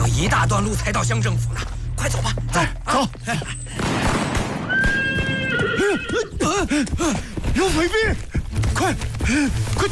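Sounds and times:
speech: 0.2 - 3.6, 5.9 - 9.8
horse neighing on a mountain road: 4.7 - 6.3.

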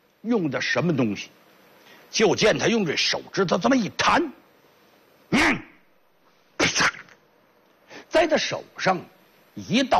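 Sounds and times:
speech: 0.2 - 1.4, 2.1 - 4.4, 5.3 - 5.7, 8.2 - 9.9
storyteller vocally imitating a sneeze: 5.3 - 5.8, 6.6 - 7.2.

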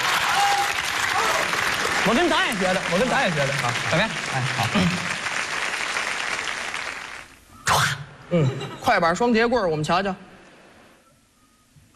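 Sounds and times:
crowd audience applause: 0.0 - 7.4
speech: 2.1 - 5.2, 8.3 - 10.2.

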